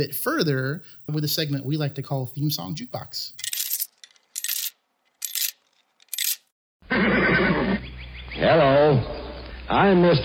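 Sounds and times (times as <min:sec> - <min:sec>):
speech: 0:00.0 - 0:03.4, 0:08.4 - 0:10.2
horse whinnying: 0:06.8 - 0:07.9.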